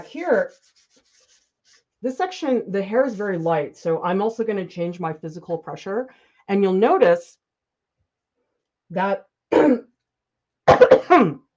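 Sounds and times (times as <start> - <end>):
speech: 0.0 - 0.8, 2.0 - 7.4, 8.9 - 9.9, 11.0 - 11.4
hoarse person clearing throat in the morning: 9.5 - 9.9, 10.7 - 11.5.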